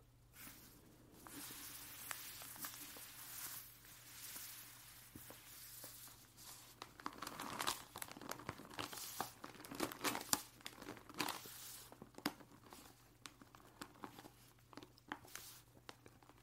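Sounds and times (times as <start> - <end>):
newspaper rustling and crinkling while handled: 0.4 - 16.4.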